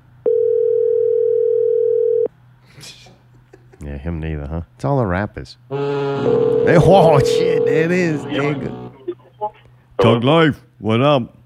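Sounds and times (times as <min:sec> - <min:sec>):
phone line electronic ring tone: 0:00.3 - 0:02.3, 0:06.2 - 0:08.6
speech: 0:04.0 - 0:08.8, 0:10.0 - 0:11.4.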